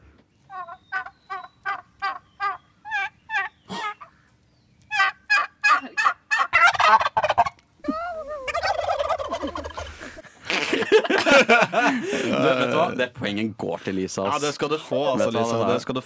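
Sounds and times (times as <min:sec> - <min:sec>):
turkey gobbling: 0:00.5 - 0:04.3, 0:04.9 - 0:10.2
laughter: 0:07.8 - 0:13.1
speech: 0:12.9 - 0:16.0.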